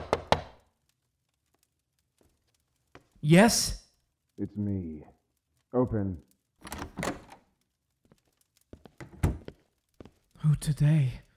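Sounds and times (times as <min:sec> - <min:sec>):
knocking on a wooden door: 0:00.0 - 0:00.5
speech: 0:03.2 - 0:03.8, 0:04.4 - 0:05.1, 0:05.7 - 0:06.3, 0:10.5 - 0:11.2.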